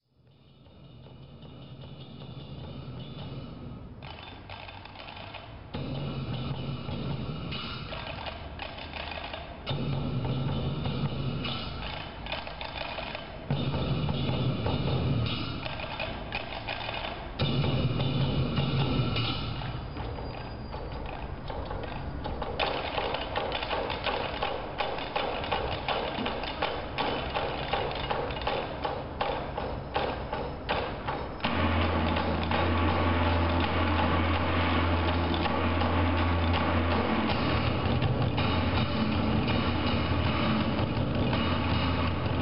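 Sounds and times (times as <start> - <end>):
steady loud driving drum roll: 0.6 - 42.4
dense percussion clattering: 0.8 - 42.4
low booming drum strikes in a historical re-enactment performance: 5.7 - 8.0, 9.7 - 12.1, 13.4 - 16.0, 17.4 - 20.3, 21.5 - 42.4.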